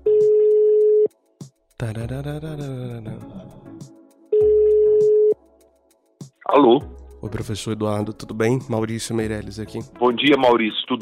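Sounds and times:
ringback tones from an outgoing telephone call: 0.0s - 1.1s, 4.4s - 5.4s
wavering vocal sound: 1.8s - 3.8s
speech: 1.8s - 3.9s, 6.5s - 11.0s.

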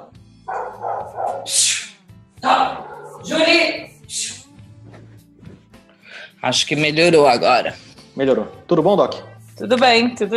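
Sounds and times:
dog barking outside: 0.5s - 1.9s, 2.6s - 3.9s
speech: 1.1s - 4.2s, 6.4s - 10.3s.

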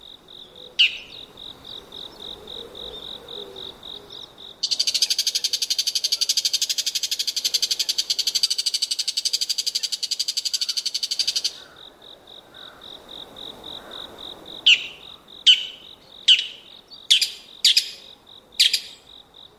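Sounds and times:
steady pulsing insect chorus: 0.0s - 19.5s
bull-headed shrike sharp territorial autumn call: 0.4s - 1.3s, 2.4s - 11.7s, 14.7s - 19.0s.

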